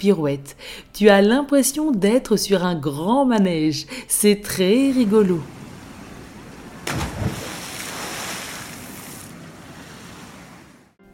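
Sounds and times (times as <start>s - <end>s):
speech: 0.0s - 5.6s
wind-like rumble: 5.4s - 10.9s
ocean waves breaking: 5.4s - 11.0s
water splash: 5.5s - 10.9s
hissing wash of surf: 7.5s - 10.9s.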